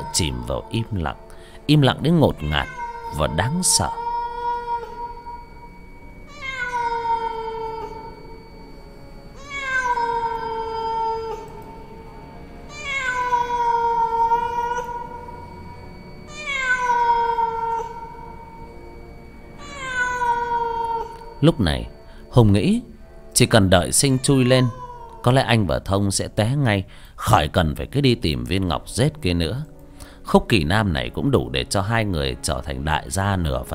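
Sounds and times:
cats meowing in a forest: 0.0 - 1.2, 2.0 - 8.5, 9.4 - 12.0, 12.7 - 18.7, 19.6 - 22.0, 23.8 - 25.5
speech: 0.1 - 4.0, 21.4 - 29.7, 30.3 - 33.7.

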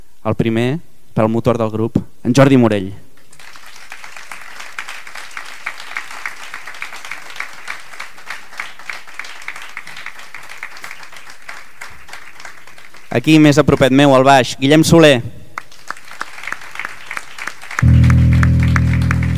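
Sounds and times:
speech: 0.2 - 3.0, 13.2 - 15.4
audience applause for the musicians at a jazz concert: 3.3 - 13.5, 15.6 - 19.3.

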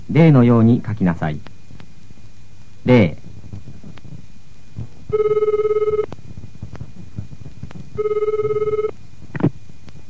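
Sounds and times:
speech: 0.1 - 1.5, 2.8 - 3.2
electronic telephone ringing: 5.1 - 6.1, 8.0 - 8.9.

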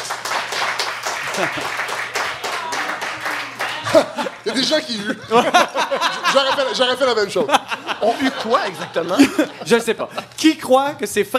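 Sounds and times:
studio audience applauding during a game segment of a live comedy show: 0.0 - 4.9
laughter: 1.1 - 1.9, 2.5 - 10.4
speech: 1.4 - 1.8, 3.9 - 11.3.

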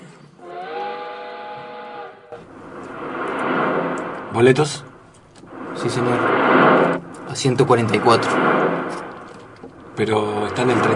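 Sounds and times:
night express train multi-tone whistle: 0.4 - 2.4
night express train rumbling along the track: 2.2 - 10.9
speech: 4.4 - 4.9, 5.8 - 9.0, 10.0 - 10.9.

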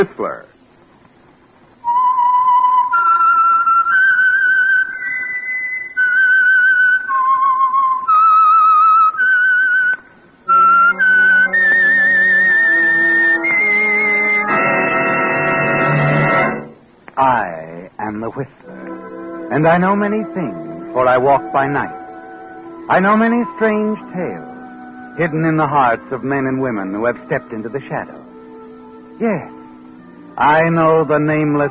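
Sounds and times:
speech: 0.0 - 0.5, 19.6 - 22.0, 22.9 - 24.5, 25.2 - 28.2, 29.2 - 29.6, 30.4 - 31.7
whistled signature tune identifying a radio program: 1.8 - 16.8, 18.7 - 31.7
sustained instrumental chords: 10.4 - 17.0, 18.6 - 31.7.

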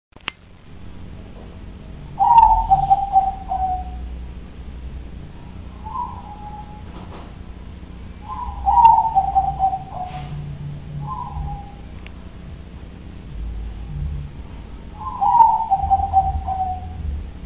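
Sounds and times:
constant low droning background: 0.2 - 17.4
dove cooing: 2.1 - 4.2, 5.5 - 7.3, 8.2 - 12.0, 14.9 - 17.2.

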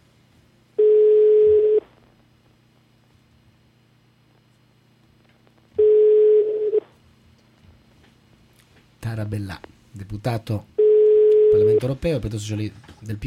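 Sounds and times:
telephone line ringing: 0.8 - 1.8, 5.8 - 6.9, 10.8 - 11.9
speech: 9.1 - 10.7, 11.5 - 13.2.

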